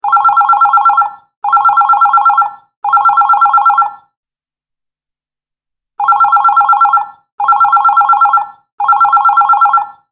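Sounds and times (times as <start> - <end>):
digital telephone ringtone: 0.0 - 4.1, 6.0 - 10.1.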